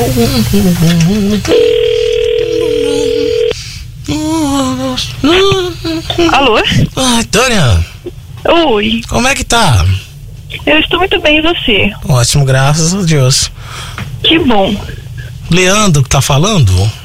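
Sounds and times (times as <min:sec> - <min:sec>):
speech: 0:00.2 - 0:01.9, 0:04.9 - 0:07.8, 0:08.6 - 0:09.9, 0:10.7 - 0:17.0
telephone dialing tones: 0:01.5 - 0:03.5.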